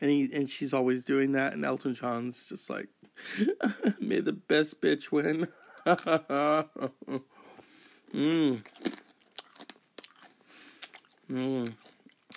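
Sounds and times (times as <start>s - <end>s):
speech: 0.0s - 7.3s, 8.1s - 9.0s, 11.3s - 11.8s
vocal sounds: 8.1s - 9.1s, 11.2s - 11.9s
crunching and chewing food: 8.1s - 12.3s
wet mouth sounds: 8.1s - 12.3s.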